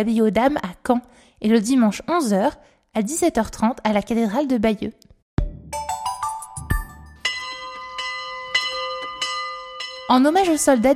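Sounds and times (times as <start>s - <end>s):
speech: 0.0s - 5.1s, 10.1s - 10.9s
church bells ringing in France: 5.8s - 10.9s.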